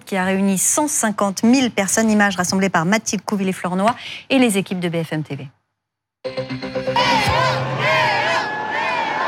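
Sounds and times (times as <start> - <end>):
speech: 0.1 - 5.6, 6.2 - 6.8
large crowd chanting a name: 6.8 - 9.2.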